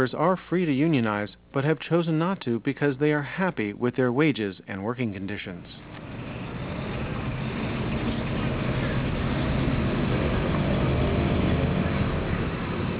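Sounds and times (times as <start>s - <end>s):
speech: 0.0s - 6.0s
constant low engine rumble: 5.8s - 12.9s
dense congested city street traffic noise: 5.8s - 12.9s.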